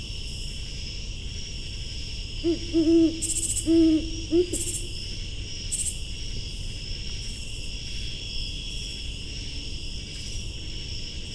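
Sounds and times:
insects buzzing: 0:00.0 - 0:11.3
great horned owl hooting from forest in Laurel, MD: 0:02.4 - 0:04.9.

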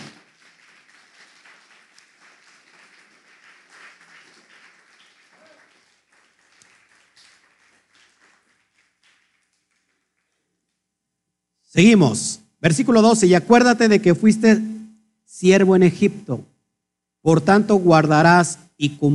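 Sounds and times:
audience applauding enthusiastically: 0:00.0 - 0:10.6
speech: 0:11.8 - 0:14.7, 0:15.3 - 0:16.5, 0:17.2 - 0:19.1.

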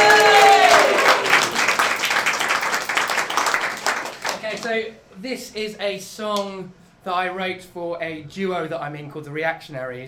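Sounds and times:
crowd applauding: 0:00.0 - 0:04.7
speech: 0:05.3 - 0:10.0.

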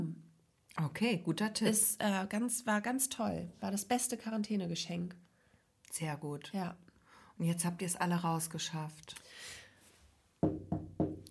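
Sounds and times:
speech: 0:00.8 - 0:05.3, 0:05.9 - 0:06.8, 0:07.4 - 0:09.6
knocking on wood: 0:10.4 - 0:11.2.

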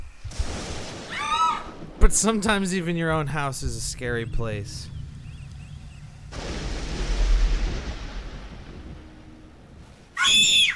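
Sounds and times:
loud piercing shrill scream: 0:01.1 - 0:01.7, 0:10.2 - 0:10.7
speech: 0:02.0 - 0:04.9
long rumbling roaring noise: 0:03.7 - 0:10.2.

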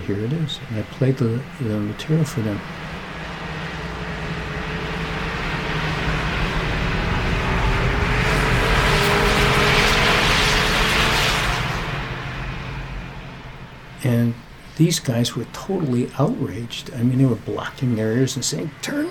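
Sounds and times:
snowmobiles in Yellowstone driving past: 0:00.0 - 0:18.9
speech: 0:00.1 - 0:02.9, 0:14.8 - 0:19.0.

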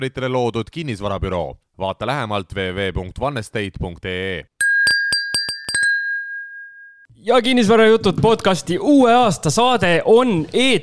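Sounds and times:
speech: 0:00.0 - 0:04.5, 0:07.2 - 0:10.8
champagne glasses clinking in a toast: 0:04.6 - 0:07.0.

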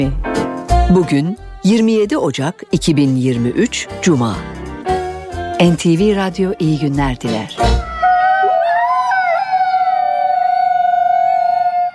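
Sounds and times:
speech: 0:00.0 - 0:00.3, 0:00.9 - 0:04.5, 0:05.6 - 0:07.8
wolves howling: 0:07.8 - 0:11.9.

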